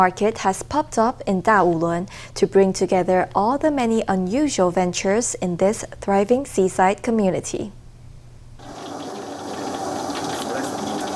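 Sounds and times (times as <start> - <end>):
speech: 0.0 - 7.8
chicken in curried batter sizzling in a hot pan: 8.6 - 11.1.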